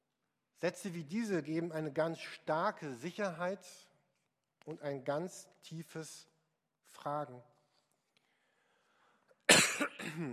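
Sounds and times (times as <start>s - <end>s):
speech: 0.6s - 3.9s, 4.7s - 6.3s, 6.9s - 7.5s, 10.1s - 10.3s
harsh throaty cough: 9.5s - 10.3s.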